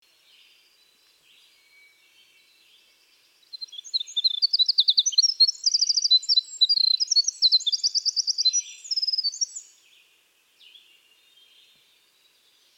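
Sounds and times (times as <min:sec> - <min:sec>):
Troglodytes hiemalis winter wren trilling: 0:03.4 - 0:09.8.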